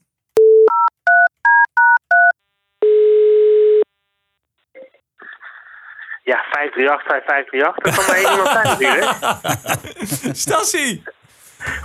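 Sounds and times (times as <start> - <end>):
telephone keypad beeps: 0.4 - 3.0
telephone tone: 0.4 - 3.9
speech: 6.3 - 11.1
laughter: 7.8 - 11.8.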